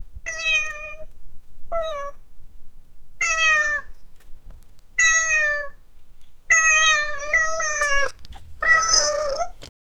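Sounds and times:
Maine Coon cat meowing: 0.2s - 1.1s, 1.7s - 2.2s, 3.2s - 4.0s, 5.0s - 5.8s, 6.5s - 9.7s.

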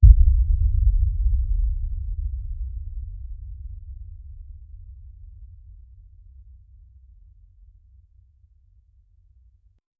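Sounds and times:
soft heartbeat with echo and reverb: 0.0s - 7.3s.

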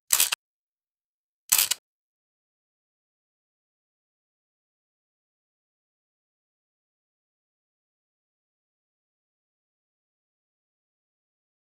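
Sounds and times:
camera click: 0.1s - 0.4s, 1.5s - 1.8s.

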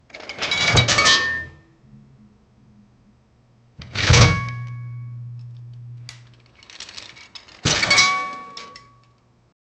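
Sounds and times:
metal crate: 0.2s - 1.5s, 3.8s - 4.6s, 6.5s - 9.0s.

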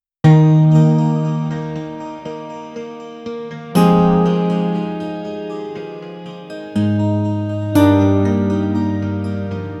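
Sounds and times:
ambient melody: 0.3s - 9.7s.

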